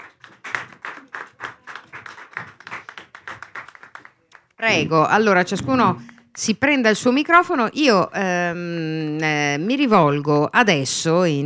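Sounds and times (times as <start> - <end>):
audience applauding: 0.0 - 4.6
speech: 4.6 - 11.4.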